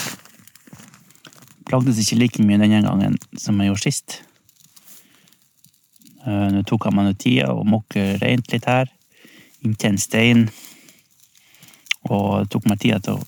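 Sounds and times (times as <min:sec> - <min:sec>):
campfire of kindling wood and bark crackling against a stone: 0:00.0 - 0:13.2
speech: 0:01.7 - 0:04.3, 0:06.2 - 0:09.0, 0:09.6 - 0:10.6, 0:12.1 - 0:13.2.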